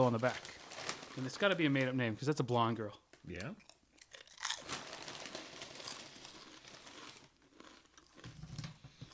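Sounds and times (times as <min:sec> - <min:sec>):
speech: 0:00.0 - 0:00.5, 0:01.2 - 0:03.7
crunching kettle chips being chewed: 0:03.6 - 0:08.7.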